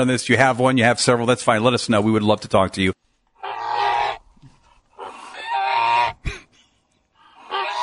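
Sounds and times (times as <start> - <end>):
speech: 0.0 - 3.0
goose honking: 3.4 - 4.2, 5.0 - 6.2, 7.4 - 7.8.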